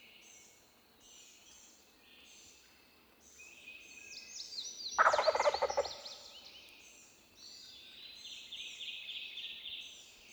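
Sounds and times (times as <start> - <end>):
wild turkey Meleagris gallopavo gobbling: 5.0 - 6.0.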